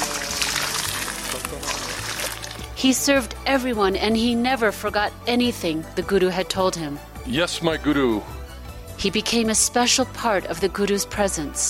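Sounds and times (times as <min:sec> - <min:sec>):
water pouring for a bath: 0:00.0 - 0:02.8
speech: 0:02.8 - 0:08.4, 0:09.0 - 0:11.6.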